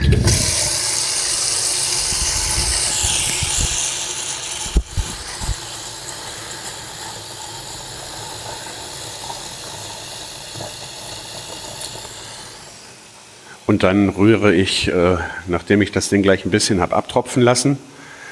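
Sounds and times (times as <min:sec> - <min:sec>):
rising gurgling sweep: 0:00.0 - 0:08.8
large amount of water pouring into a mop bucket: 0:00.0 - 0:15.9
speech: 0:13.7 - 0:17.9.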